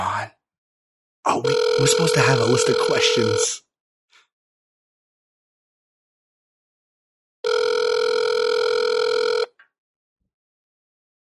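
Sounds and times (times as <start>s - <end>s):
speech: 1.2s - 3.6s
telephone ringing tone heard down the line: 1.4s - 3.5s, 7.4s - 9.6s.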